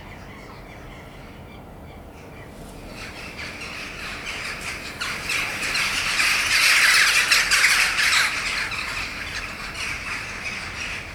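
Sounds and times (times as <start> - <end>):
flock of jackdaws chattering in a backyard: 2.7 - 11.0.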